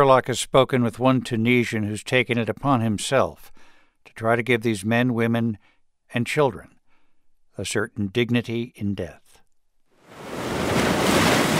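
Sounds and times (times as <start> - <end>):
speech: 0.0 - 6.7, 7.6 - 9.2
rough sea waves surging onto the shore: 10.1 - 11.5.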